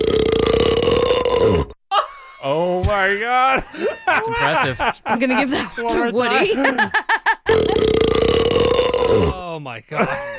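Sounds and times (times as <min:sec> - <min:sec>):
long deep burp with a croaking texture: 0:00.0 - 0:01.8, 0:07.5 - 0:09.4
speech: 0:02.9 - 0:07.7, 0:09.6 - 0:10.3
laughter: 0:03.4 - 0:07.8, 0:09.9 - 0:10.3.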